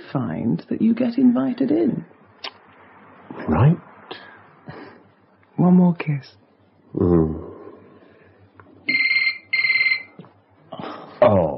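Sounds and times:
faint steady hum: 0:00.0 - 0:11.5
speech: 0:00.1 - 0:02.2, 0:03.4 - 0:04.2, 0:05.6 - 0:07.5
low vocal murmur: 0:06.9 - 0:08.0
electronic telephone ringing at night: 0:08.9 - 0:10.2.

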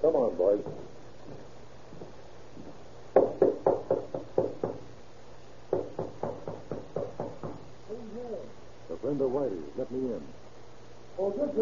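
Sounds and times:
speech: 0:00.0 - 0:01.5, 0:09.3 - 0:10.4, 0:11.2 - 0:11.5
low steady hum: 0:00.0 - 0:11.5
police officer knocking on a room door: 0:00.5 - 0:00.9, 0:03.2 - 0:04.9, 0:05.7 - 0:07.7.

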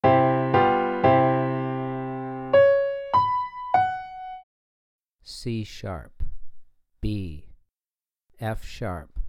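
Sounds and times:
piano three note melodic interval for ear training: 0:00.0 - 0:04.4.

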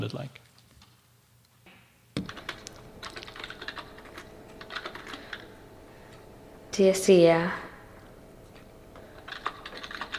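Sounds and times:
speech: 0:00.0 - 0:00.4, 0:06.8 - 0:07.6
typing on a computer keyboard: 0:02.2 - 0:05.5, 0:09.2 - 0:10.1.

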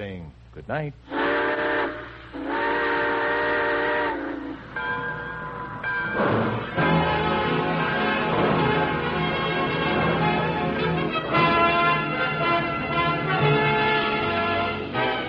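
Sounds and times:
speech: 0:00.0 - 0:01.2
steam train whistle blasts: 0:01.1 - 0:04.8, 0:06.1 - 0:15.2
steam locomotive rumbling and chuffing as it pulls away: 0:01.1 - 0:15.2.

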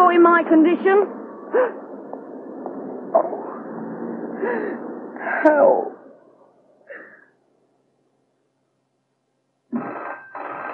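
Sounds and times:
speech: 0:00.4 - 0:01.8, 0:03.1 - 0:03.4, 0:04.4 - 0:06.0
telephone bell ringing in double-ring pattern: 0:09.9 - 0:10.7.

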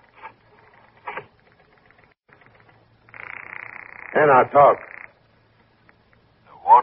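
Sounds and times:
rotary telephone dialing: 0:00.0 - 0:04.0
telephone line tone buzzing: 0:00.8 - 0:05.2
speech: 0:04.2 - 0:04.9.

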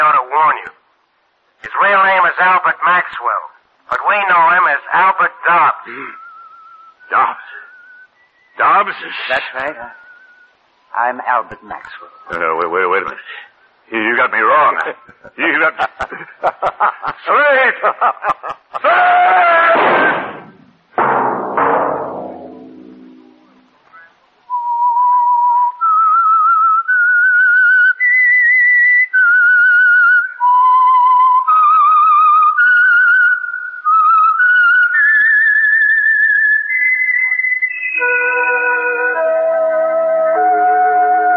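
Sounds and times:
speech: 0:00.5 - 0:00.8, 0:01.7 - 0:06.2, 0:07.1 - 0:07.7, 0:08.6 - 0:10.0, 0:10.9 - 0:20.3
solo whistled program theme melody: 0:06.2 - 0:08.6, 0:24.5 - 0:41.3
laughter: 0:14.9 - 0:19.2
burst of noise: 0:19.2 - 0:24.4.

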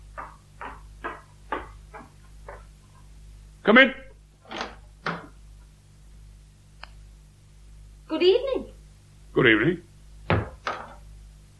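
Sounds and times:
faint hum: 0:00.0 - 0:11.5
banging on a front door: 0:00.1 - 0:02.7, 0:10.3 - 0:11.0
speech: 0:03.7 - 0:04.0, 0:09.4 - 0:09.9.

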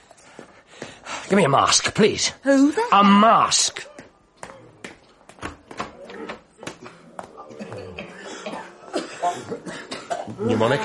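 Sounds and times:
speech: 0:01.3 - 0:03.9, 0:10.4 - 0:10.8
person coughing in harsh bursts: 0:07.6 - 0:10.5.

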